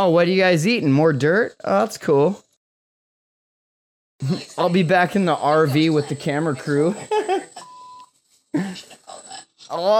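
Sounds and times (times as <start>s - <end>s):
speech: 0.0s - 2.5s, 4.2s - 7.3s, 9.7s - 9.9s
censor bleep over a word in speech: 7.6s - 8.1s.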